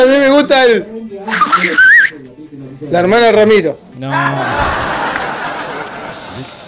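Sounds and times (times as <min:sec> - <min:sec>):
speech: 0:00.0 - 0:01.9, 0:02.8 - 0:05.0
voices murmuring: 0:01.2 - 0:02.8
breathy attempted whistle: 0:01.3 - 0:02.2
laughter: 0:04.1 - 0:06.6.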